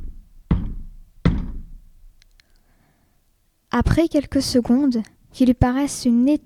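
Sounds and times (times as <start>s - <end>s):
hesitant knocking on a wooden door: 0.0s - 1.9s
speech: 3.8s - 6.4s.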